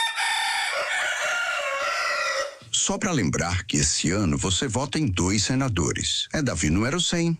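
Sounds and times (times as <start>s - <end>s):
two roosters crowing loudly: 0.0s - 2.7s
speech: 2.9s - 7.3s.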